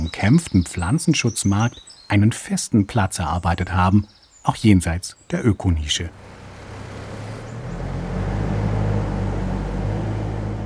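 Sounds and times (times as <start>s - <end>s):
speech: 0.1s - 6.4s
motorway traffic roar: 6.1s - 10.6s.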